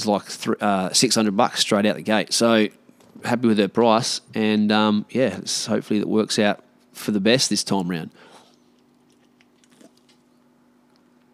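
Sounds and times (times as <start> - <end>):
speech: 0.0 - 8.3
steady low electrical hum: 0.0 - 11.3
person sipping a drink: 8.4 - 10.4.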